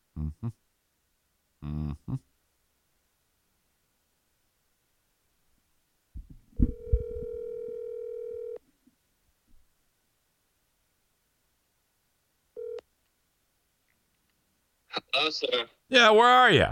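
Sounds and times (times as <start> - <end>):
speech: 0.2 - 0.7, 1.6 - 2.3, 15.2 - 16.6
steady electronic phone ringback tone on an outgoing call: 6.6 - 8.6, 12.6 - 12.8.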